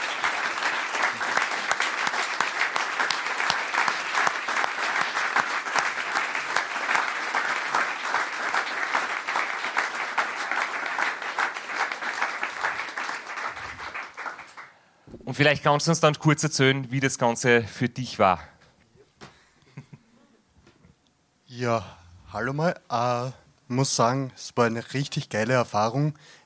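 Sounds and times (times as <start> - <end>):
large audience applauding: 0.0 - 14.7
speech: 15.4 - 18.5, 21.7 - 26.4.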